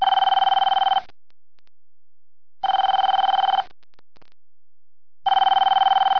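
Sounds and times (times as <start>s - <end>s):
telephone ringing: 0.0s - 1.1s, 2.6s - 3.7s, 5.3s - 6.1s.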